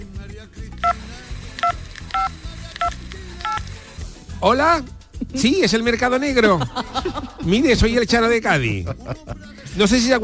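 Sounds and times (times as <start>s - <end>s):
telephone dialing tones as a call is placed: 0.8s - 4.0s
speech: 4.4s - 10.2s
laughter: 6.3s - 8.0s, 8.6s - 9.6s.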